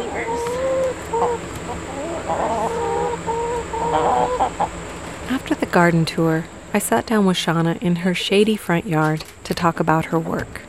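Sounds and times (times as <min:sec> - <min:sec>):
chickens clucking in a garden chicken coop: 0:00.0 - 0:05.3
faint outdoor bustle: 0:00.0 - 0:10.6
steady hum: 0:00.0 - 0:10.6
speech: 0:05.3 - 0:10.6.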